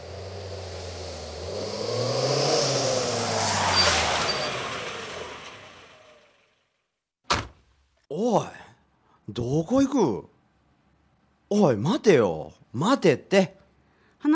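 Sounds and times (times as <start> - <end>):
car engine humming and winding down as the vehicle stops: 0.0 - 6.6
single sharp thud like a door closing: 7.2 - 7.8
speech: 8.2 - 8.6, 9.3 - 10.3, 11.5 - 13.6.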